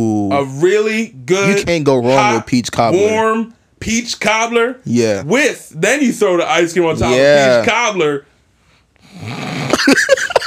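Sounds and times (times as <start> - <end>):
speech: 0.0 - 8.3, 9.1 - 10.3
person imitating loud snoring and heavy breathing: 9.0 - 9.9.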